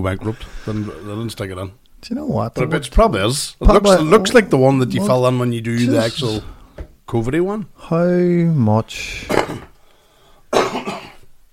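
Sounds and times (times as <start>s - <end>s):
speech: 0.0s - 9.7s
breathing: 0.3s - 1.2s, 6.4s - 6.8s, 9.0s - 10.5s
person coughing: 9.3s - 9.7s, 10.5s - 11.3s
person clearing a frog from the throat: 9.3s - 9.8s, 10.5s - 11.3s.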